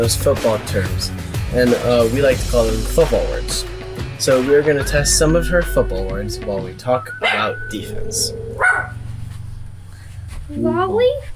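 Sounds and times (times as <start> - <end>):
speech: 0.0 - 8.9, 10.5 - 11.3
steady low hum: 3.4 - 11.3
dog barking: 7.2 - 7.5, 8.6 - 9.0
dog giving a rising whiny yelp: 7.2 - 7.5, 8.3 - 9.1.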